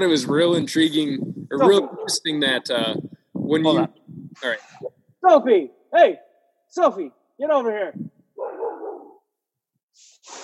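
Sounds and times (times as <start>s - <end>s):
speech: 0.0s - 6.2s, 6.8s - 8.0s
dog barking: 1.6s - 2.2s, 8.4s - 9.2s.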